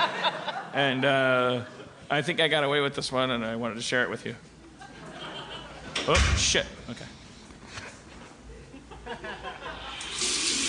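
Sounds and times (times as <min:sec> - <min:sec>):
laughter: 0:00.0 - 0:02.1, 0:04.7 - 0:06.1, 0:08.5 - 0:10.2
speech: 0:00.7 - 0:04.5, 0:06.1 - 0:07.1
faucet turned on: 0:10.0 - 0:10.6.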